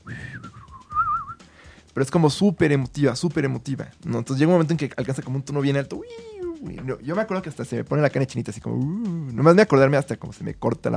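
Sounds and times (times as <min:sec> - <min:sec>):
person whistling a short wavering melody: 0:00.0 - 0:01.5
speech: 0:02.0 - 0:10.9.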